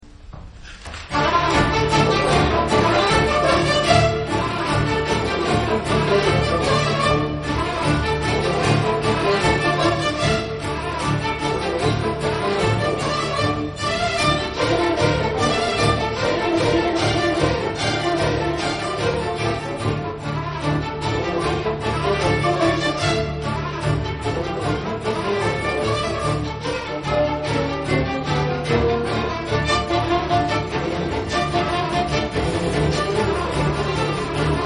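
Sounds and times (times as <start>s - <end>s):
baroque tambourin piece: 1.1s - 34.6s.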